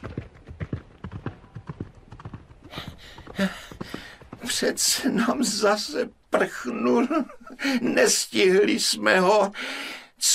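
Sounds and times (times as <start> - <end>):
horse hooves galloping out through a gate: 0.0 - 5.7
breathy noisy bursts of a galloping horse: 2.6 - 4.4
speech: 2.8 - 10.3.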